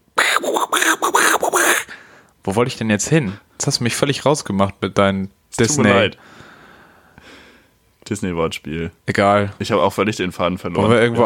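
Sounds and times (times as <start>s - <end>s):
voice imitating duck quacks: 0.2s - 1.9s
speech: 2.5s - 6.5s, 8.1s - 11.2s.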